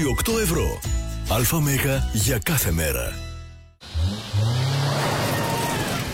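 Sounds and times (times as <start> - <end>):
speech: 0.0 - 3.3
SUV engine starting up, revving and accelerating: 3.8 - 6.1.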